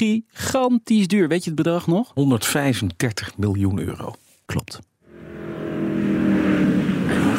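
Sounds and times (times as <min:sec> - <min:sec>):
speech: 0:00.0 - 0:04.9
Mercedes-Benz 300 SLR Uhlenhaut Coupé racing car engine revving: 0:05.0 - 0:07.3.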